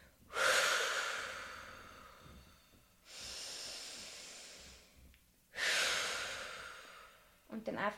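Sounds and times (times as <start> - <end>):
deep loud breathing in and out during a breathing exercise: 0.0 - 7.5
speech: 7.6 - 7.9.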